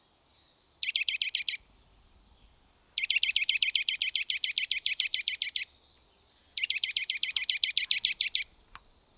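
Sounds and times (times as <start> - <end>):
Eurasian nuthatch Sitta europaea calling in piping notes: 0.8 - 1.6, 3.0 - 5.7, 6.6 - 8.5.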